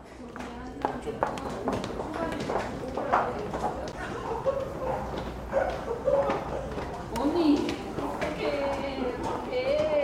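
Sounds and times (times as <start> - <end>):
overlapping commuter chatter in subway station: 0.0 - 10.0
commuters' footsteps on hard floor in subway station: 0.8 - 10.0
people laughing: 3.9 - 6.8.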